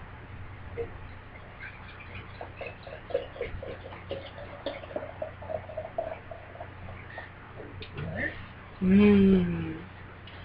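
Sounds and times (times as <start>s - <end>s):
low hum: 0.0s - 10.4s
speech: 0.8s - 1.0s, 8.8s - 9.6s
pitch-black stout beer poured from a growler into a glass: 1.5s - 7.3s.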